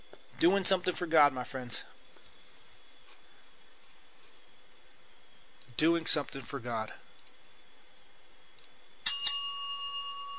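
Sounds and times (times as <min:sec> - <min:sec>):
speech: 0:00.4 - 0:01.9, 0:05.8 - 0:07.0
bell ringing: 0:09.0 - 0:10.3.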